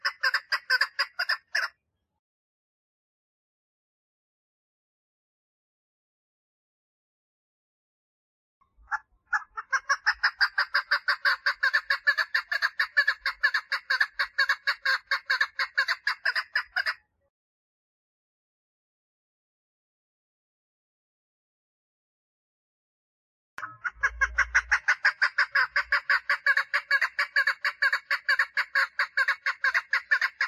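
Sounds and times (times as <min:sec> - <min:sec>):
partridge song of rapid raspy repeated notes: 0:00.0 - 0:01.7, 0:08.9 - 0:17.0, 0:23.6 - 0:30.4.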